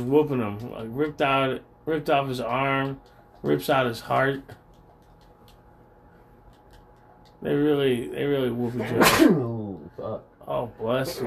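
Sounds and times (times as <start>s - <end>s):
speech: 0.0s - 4.6s, 7.4s - 11.2s
sneeze into a towel: 8.8s - 9.6s.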